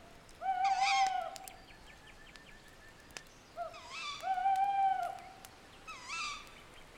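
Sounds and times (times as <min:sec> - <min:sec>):
faint hiss: 0:00.0 - 0:06.9
owl hooting at night: 0:00.4 - 0:01.5, 0:03.6 - 0:06.4.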